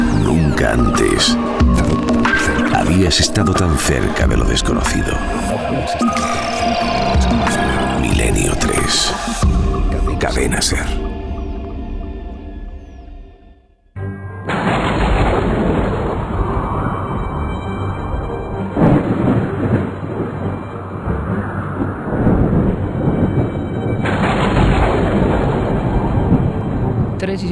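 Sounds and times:
thunder from a storm rumbling with crackling bursts: 0.0 - 13.2, 14.5 - 27.4
speech: 0.7 - 1.7, 3.0 - 7.5, 8.3 - 11.1.

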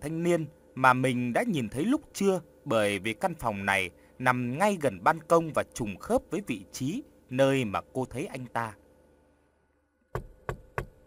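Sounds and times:
speech: 0.0 - 8.8
knocking on the door of a room: 10.1 - 11.0.

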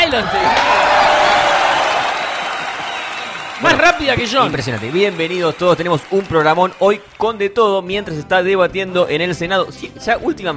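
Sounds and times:
talk show audience applause: 0.0 - 7.4
crowd noise: 0.0 - 7.6
speech: 0.1 - 0.9, 3.6 - 10.5.

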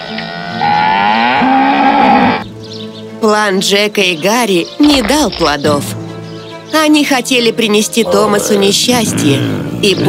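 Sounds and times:
cow mooing: 0.0 - 2.4
speech: 3.2 - 6.0, 6.7 - 10.0.

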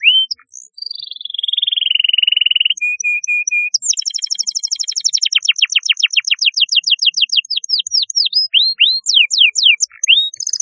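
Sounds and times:
canary singing: 0.0 - 10.6.

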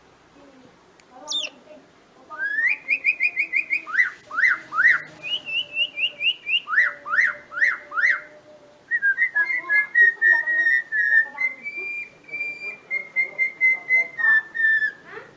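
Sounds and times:
black-winged myna song: 2.4 - 8.3, 8.9 - 15.0.

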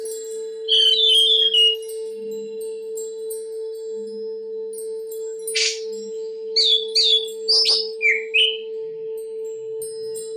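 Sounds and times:
Oriental magpie-robin singing: 0.7 - 1.8, 5.5 - 5.9, 6.6 - 8.7.

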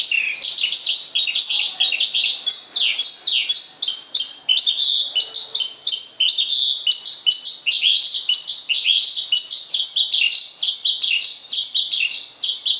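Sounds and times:
Javan bush lark singing: 0.0 - 12.7.

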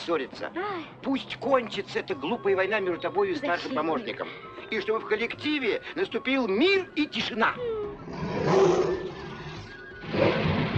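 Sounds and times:
speech: 0.0 - 8.8
caged tigers and lions roaring as cages are loaded onto a ship's deck: 8.0 - 10.7.

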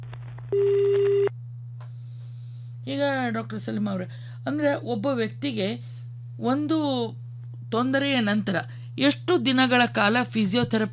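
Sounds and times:
telephone line tone from an incoming call: 0.5 - 1.3
speech: 2.9 - 10.9.

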